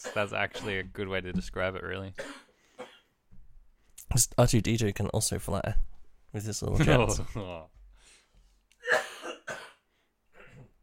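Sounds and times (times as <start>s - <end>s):
person coughing harshly: 0.0s - 0.9s, 2.2s - 3.1s, 8.8s - 10.8s
speech: 0.0s - 2.4s, 4.1s - 7.8s.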